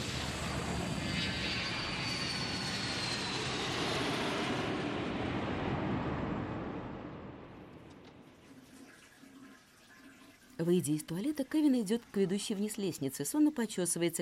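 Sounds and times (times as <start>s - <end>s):
jet airplane taking off: 0.0s - 8.3s
speech: 10.6s - 14.2s.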